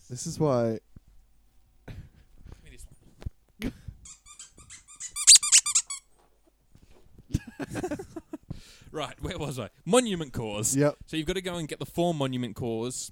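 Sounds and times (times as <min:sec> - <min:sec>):
speech: 0:00.1 - 0:01.0, 0:09.0 - 0:13.0
dog whining: 0:04.1 - 0:06.0.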